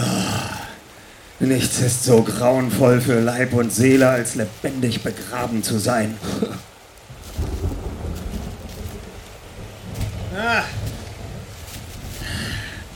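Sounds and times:
rain: 0.0s - 12.9s
speech: 1.4s - 6.6s
deep rolling thunder: 7.1s - 12.9s.

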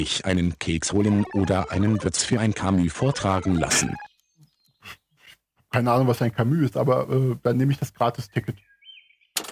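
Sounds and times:
speech: 0.0s - 4.0s, 5.7s - 8.7s
zebra finch chirping: 3.4s - 5.4s, 8.2s - 9.4s.

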